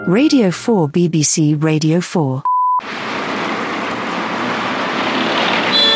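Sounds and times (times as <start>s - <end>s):
speech: 0.1s - 3.2s
road traffic roar: 2.8s - 5.9s.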